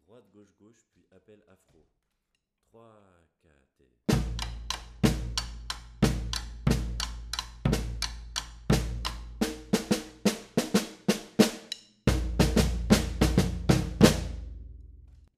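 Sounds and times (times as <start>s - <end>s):
Afro batucada drumming call: 4.1s - 14.6s.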